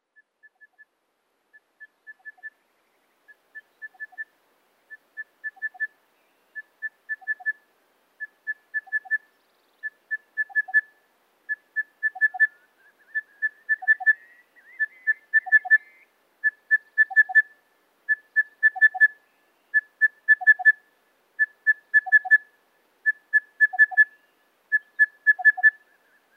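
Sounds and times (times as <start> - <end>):
crested bellbird calling: 1.8 - 2.5, 3.3 - 4.3, 5.2 - 5.9, 6.6 - 7.6, 8.2 - 10.9, 11.5 - 20.8, 21.4 - 22.5, 23.1 - 26.3.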